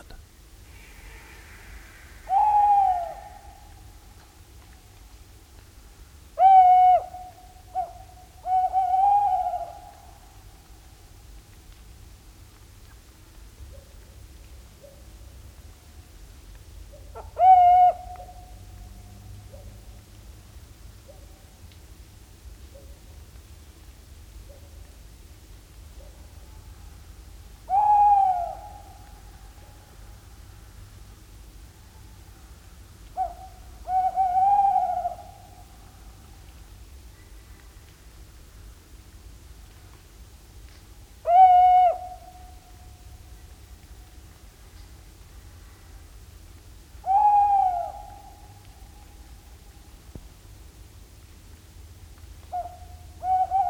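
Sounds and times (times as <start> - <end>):
steady low hiss of outdoor noise: 0.0 - 53.6
tawny owls giving quavering territorial hoots on a foggy lake shore: 0.7 - 4.2, 6.4 - 10.5, 16.9 - 18.6, 27.6 - 29.8, 33.2 - 36.0, 41.2 - 42.8, 47.0 - 49.2, 52.5 - 53.6.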